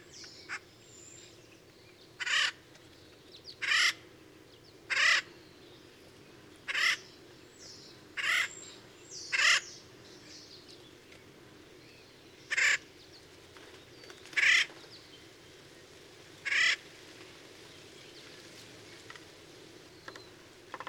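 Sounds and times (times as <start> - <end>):
bird giving loud harsh raspy cawing calls: 2.2 - 2.6, 3.6 - 4.0, 4.9 - 5.3, 6.7 - 7.1, 8.2 - 8.6, 9.3 - 9.8, 12.5 - 12.9, 14.4 - 14.7, 16.4 - 16.8.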